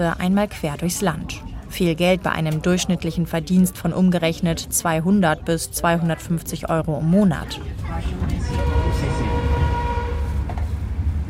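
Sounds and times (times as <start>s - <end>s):
speech: 0.0s - 9.4s
train rumbling as it stops at a station: 0.0s - 11.2s
faint tonal squeals of a stopping train: 8.4s - 10.5s.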